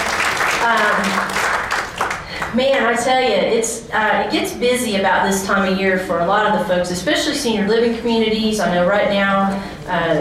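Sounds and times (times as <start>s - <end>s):
audience applause: 0.0s - 2.5s
speech: 0.6s - 1.4s, 2.6s - 10.1s.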